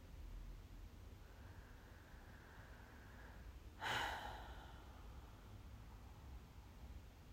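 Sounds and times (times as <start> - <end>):
steady hiss: 0.0 - 7.3
slow deep breathing: 1.0 - 6.6.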